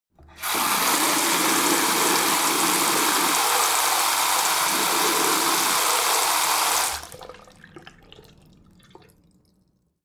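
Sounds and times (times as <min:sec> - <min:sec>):
garden tap water flowing very hard: 0:00.2 - 0:08.0.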